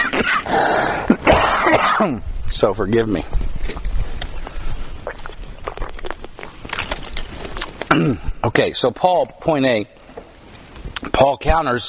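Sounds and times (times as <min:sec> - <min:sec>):
person clearing throat: 0:00.0 - 0:02.2, 0:07.9 - 0:08.3
person coughing: 0:00.0 - 0:02.2, 0:07.9 - 0:08.3
speech: 0:02.0 - 0:03.4, 0:07.9 - 0:10.0, 0:11.2 - 0:11.8.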